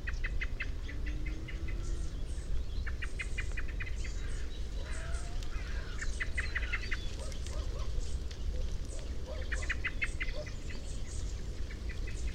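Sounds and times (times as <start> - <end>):
low rumbling background noise: 0.0 - 12.3
common blackbird Turdus merula clicking calls: 4.8 - 10.8.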